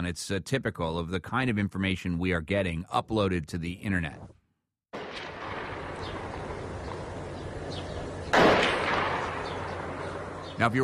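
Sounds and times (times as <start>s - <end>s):
speech: 0.0s - 4.4s, 10.6s - 10.8s
gunshot from soldiers and tanks: 4.9s - 6.3s, 8.3s - 9.8s.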